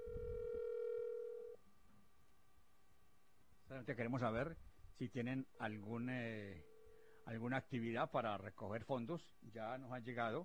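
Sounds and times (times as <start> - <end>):
telephone ringing tone on an unanswered call: 0.0 - 1.6
faint noise: 0.0 - 10.4
speech: 3.7 - 10.4.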